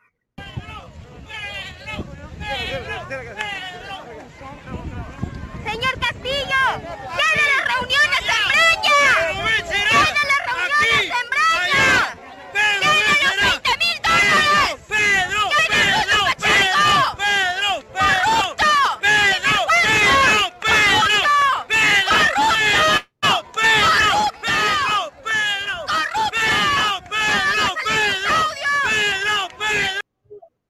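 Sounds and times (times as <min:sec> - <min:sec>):
dense protest crowd shouting and chanting together: 0:00.4 - 0:30.1
sharp yells rising above the crowd roar: 0:06.5 - 0:30.0.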